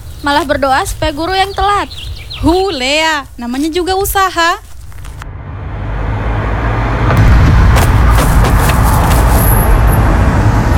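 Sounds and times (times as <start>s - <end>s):
steady road traffic hiss: 0.0s - 7.0s, 7.8s - 10.7s
speech: 0.2s - 4.7s
car passing: 4.9s - 10.7s.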